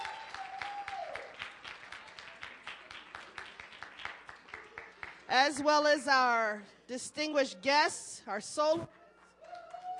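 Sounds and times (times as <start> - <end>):
audience applause: 0.0 - 5.3, 9.4 - 9.9
speech: 5.3 - 9.0.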